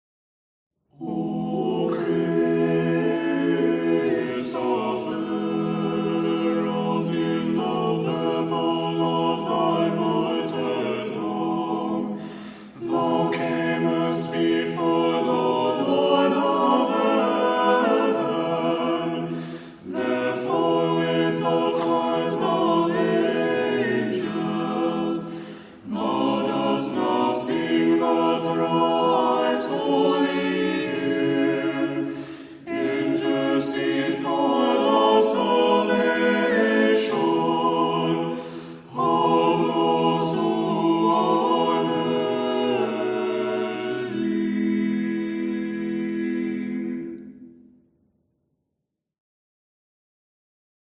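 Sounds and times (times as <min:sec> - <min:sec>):
Russian Greek chant in tone 4: 0:00.9 - 0:47.4.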